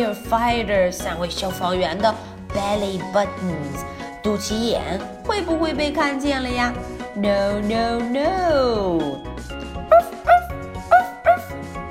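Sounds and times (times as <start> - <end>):
speech: 0.0 - 10.1
steady music: 0.0 - 11.9
dog barking: 9.9 - 11.6.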